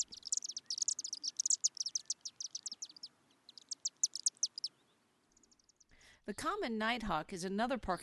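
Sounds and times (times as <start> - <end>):
chimney swifts giving high chipping calls: 0.0 - 5.9
speech: 6.3 - 8.0.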